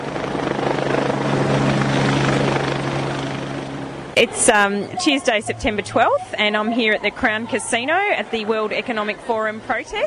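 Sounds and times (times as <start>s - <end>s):
helicopter flying over protesters blocking Crown Casino entrances: 0.0s - 9.6s
speech: 4.2s - 10.0s.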